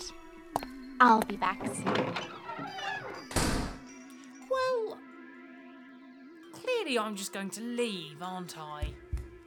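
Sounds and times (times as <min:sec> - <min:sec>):
door lock clicks and clunks: 0:00.6 - 0:03.8
speech: 0:01.0 - 0:03.0, 0:06.9 - 0:09.0.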